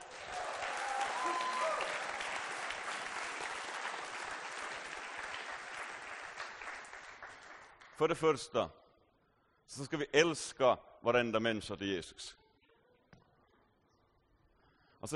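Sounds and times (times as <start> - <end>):
audience applause: 0.0 - 7.9
faint cheers and whistles: 0.2 - 2.4
speech: 8.0 - 8.8, 9.7 - 12.4.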